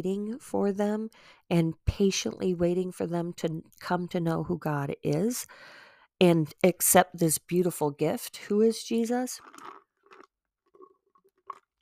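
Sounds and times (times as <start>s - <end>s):
speech: 0.0s - 9.8s
person slurping the last of a Diet Coke: 9.4s - 11.7s.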